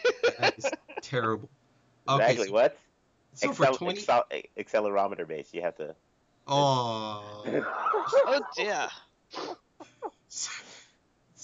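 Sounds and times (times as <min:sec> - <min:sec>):
laughter: 0:00.0 - 0:01.2, 0:07.4 - 0:08.7
speech: 0:00.5 - 0:09.6
person sneezing: 0:09.4 - 0:10.8.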